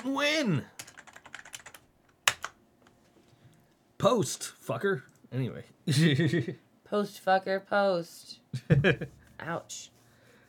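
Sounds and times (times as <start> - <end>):
speech: 0.1 - 0.8, 4.0 - 10.0
computer keyboard typing: 0.8 - 2.6.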